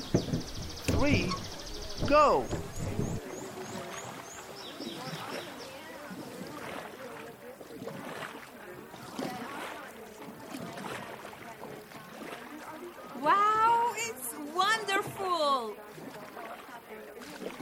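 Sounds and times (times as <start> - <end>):
wind noise buffeting the microphone: 0.0 - 3.4
loud rushing water under a rafting boat: 0.0 - 17.6
speech: 1.0 - 2.8.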